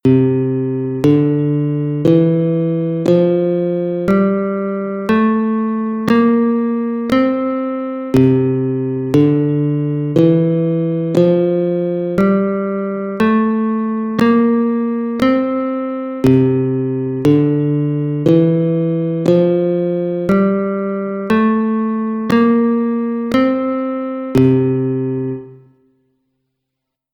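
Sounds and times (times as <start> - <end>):
guitar playing a C Mixolydian scale: 0.0 - 25.9.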